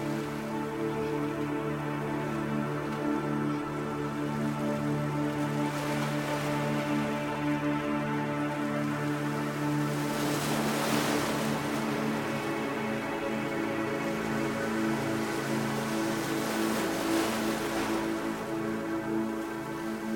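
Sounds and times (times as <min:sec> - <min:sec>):
low sustained hum: 0:00.0 - 0:20.1
ocean waves washing on shore: 0:00.0 - 0:20.1.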